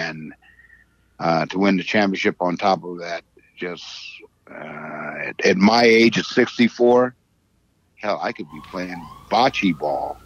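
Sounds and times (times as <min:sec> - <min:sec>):
speech: 0:00.1 - 0:00.5, 0:01.2 - 0:07.2, 0:08.0 - 0:10.2
police siren wailing: 0:08.1 - 0:10.2.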